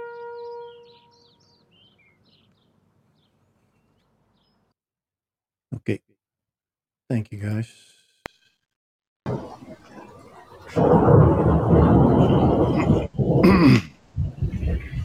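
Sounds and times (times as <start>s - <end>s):
speech: 5.8s - 6.1s, 7.1s - 7.9s
heavy thunder rumbling from a passing storm: 9.3s - 15.0s.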